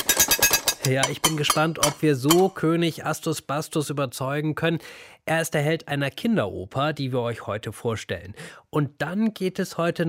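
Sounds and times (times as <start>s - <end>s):
mechanical beater striking cowbells, a tin can and a metal plate: 0.1s - 2.6s
speech: 0.8s - 10.0s.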